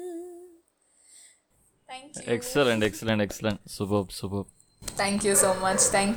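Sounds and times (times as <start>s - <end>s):
speech: 2.0s - 6.1s
neighbour's dog howling: 5.2s - 6.1s.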